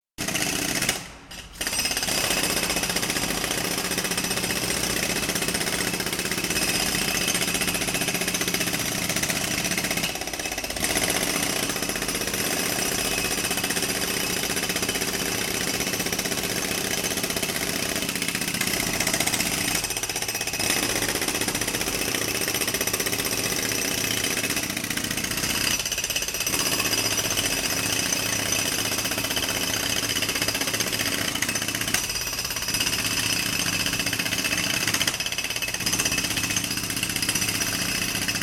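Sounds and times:
pneumatic drill jackhammers operating: 0.2 - 38.4.

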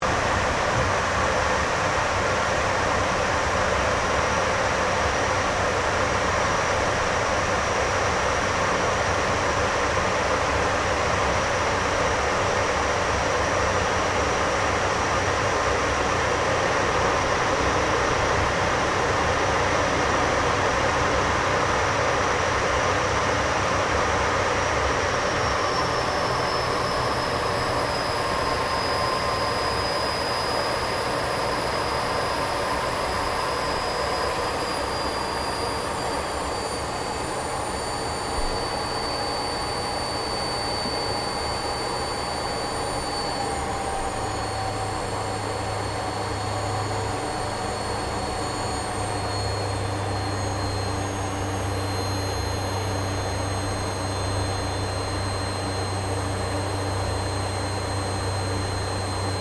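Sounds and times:
CA-27 Sabre jet aircraft flying heard from interior: 0.0 - 59.3.

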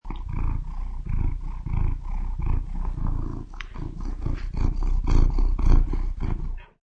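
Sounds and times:
domestic cat purring: 0.0 - 6.8.

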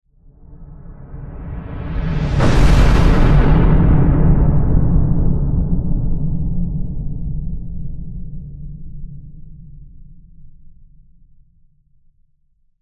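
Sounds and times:
sci-fi spaceship explosion: 2.1 - 6.7.

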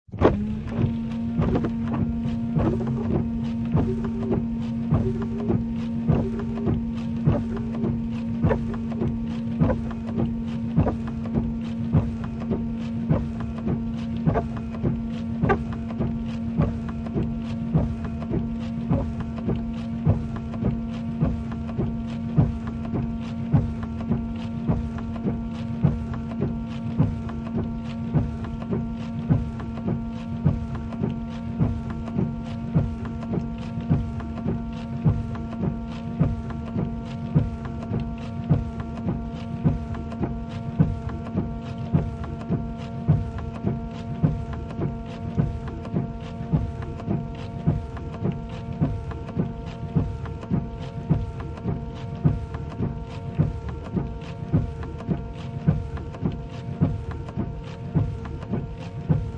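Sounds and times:
windshield wipers in car interior: 0.1 - 59.3.

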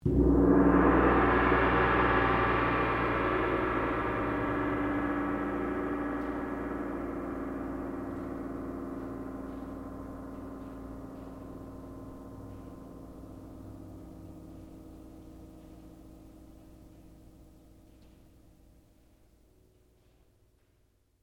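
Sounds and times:
Japanese tam tam strike: 0.0 - 15.2.

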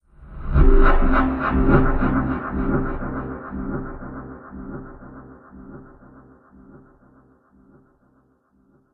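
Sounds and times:
swooshy delay trailer hit: 0.5 - 5.0.

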